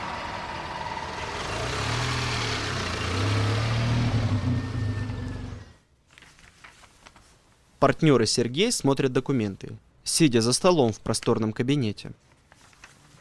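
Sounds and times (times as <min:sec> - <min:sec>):
car engine running and revving as people drive off: 0:00.0 - 0:05.8
speech: 0:07.8 - 0:12.3.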